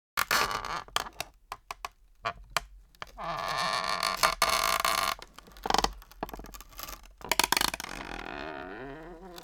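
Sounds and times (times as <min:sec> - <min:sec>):
wooden chair creaking with movement: 0:00.2 - 0:09.4.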